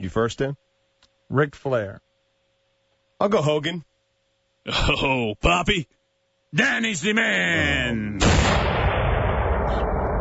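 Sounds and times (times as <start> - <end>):
speech: 0.0 - 0.7, 1.3 - 2.1, 3.2 - 3.9, 4.6 - 8.6
explosion roar with heavy low rumble: 8.2 - 10.1.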